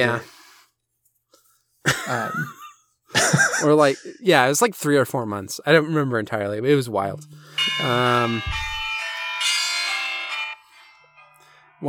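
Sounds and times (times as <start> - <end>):
speech: 0.0 - 0.3, 1.8 - 2.6, 3.3 - 8.7
laughter: 1.9 - 4.2
school bell ringing: 7.1 - 10.6.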